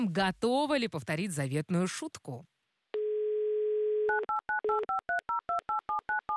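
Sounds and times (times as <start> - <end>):
speech: 0.0 - 2.5, 4.6 - 5.0
telephone dial tone: 3.0 - 6.3.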